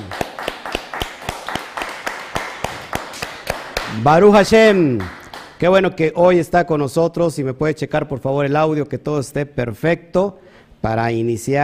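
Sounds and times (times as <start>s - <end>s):
audience clapping at a Shabbat Torah teaching: 0.0s - 5.8s
speech: 4.0s - 11.6s.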